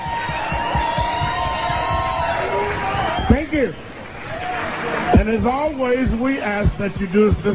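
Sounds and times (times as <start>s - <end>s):
audience whoops and shouts: 0.0s - 3.5s
audience clapping: 0.0s - 6.0s
speech: 3.5s - 3.9s, 5.2s - 7.5s.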